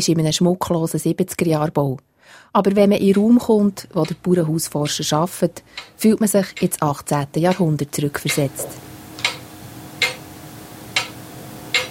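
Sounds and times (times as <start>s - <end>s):
speech: 0.0s - 9.0s
room hum: 2.3s - 11.8s
old pendulum clock ticking: 2.7s - 10.3s, 10.9s - 11.8s.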